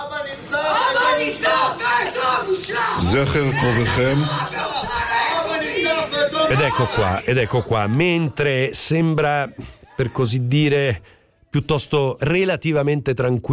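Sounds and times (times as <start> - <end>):
protesters shouting during a ceremony speech: 0.3 - 8.4, 9.2 - 10.5
speech: 1.2 - 4.6, 6.2 - 13.5.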